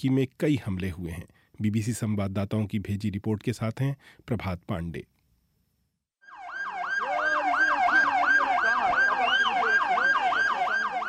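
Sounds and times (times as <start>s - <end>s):
speech: 0.0s - 5.1s
ambulance siren wailing at vehicle bomb explosion scene in Ankara Turkey: 6.2s - 11.0s.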